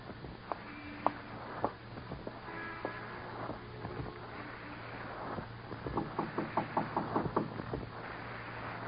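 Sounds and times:
steady low rumble: 0.0 - 8.8
knocking on a door: 5.9 - 7.9.

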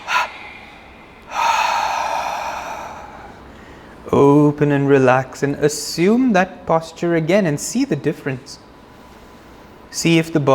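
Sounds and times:
person exhaling deeply during a guided meditation: 0.0 - 4.0
speech: 4.1 - 8.6, 10.0 - 10.5.

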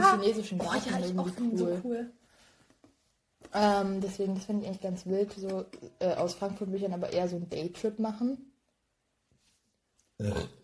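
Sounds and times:
speech: 0.2 - 2.2, 3.5 - 8.5, 10.2 - 10.6
person burping: 10.2 - 10.6.

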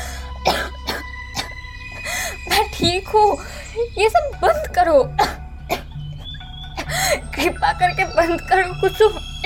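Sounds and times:
harsh coughs: 0.5 - 1.5
speech: 2.8 - 5.3, 7.8 - 9.3.

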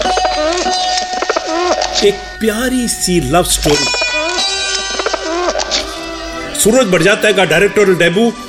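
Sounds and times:
pigeon cooing: 0.0 - 2.0, 3.8 - 6.4
sustained musical tones: 0.0 - 8.4
speech: 2.0 - 4.5, 6.6 - 8.4.

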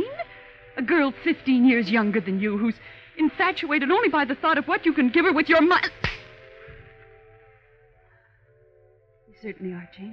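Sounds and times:
speech: 0.8 - 6.1, 9.4 - 10.1
sharp loud slap across the face: 5.8 - 6.4.

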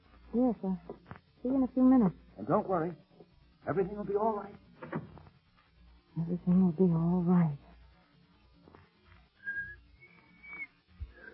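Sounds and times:
speech: 0.3 - 3.0, 3.6 - 5.0, 6.2 - 7.6
woman's failed attempt at whistling: 9.4 - 10.8.

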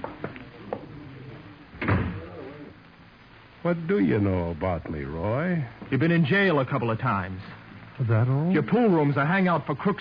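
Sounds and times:
door thudding shut: 1.8 - 2.2
speech: 3.6 - 9.9.

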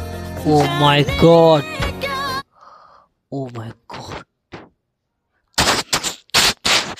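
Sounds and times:
speech: 0.4 - 1.8
gunfire bursts: 5.6 - 6.9.

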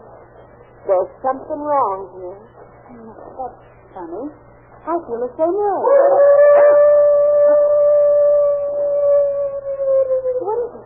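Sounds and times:
speech: 0.9 - 6.7
dog howling on a back porch: 5.8 - 10.8.

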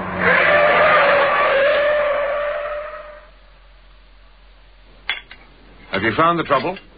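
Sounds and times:
car tires screeching as car skids with failing steering: 0.0 - 3.4
speech: 6.0 - 6.9.

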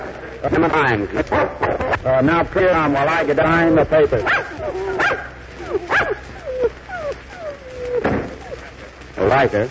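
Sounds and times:
speech: 0.4 - 5.8, 9.2 - 9.7
dogs barking and yelping: 1.2 - 2.0, 4.0 - 8.9
dogs whining yips: 4.2 - 8.8.

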